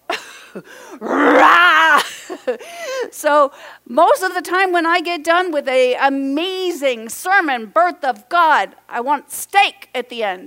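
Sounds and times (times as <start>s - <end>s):
speech: 0.5s - 10.4s
man imitating a lion's roar: 1.0s - 1.8s.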